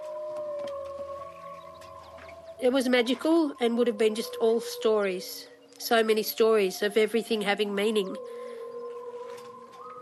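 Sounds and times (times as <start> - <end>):
whale song: 0.0 - 5.6, 7.9 - 10.0
speech: 2.6 - 8.4.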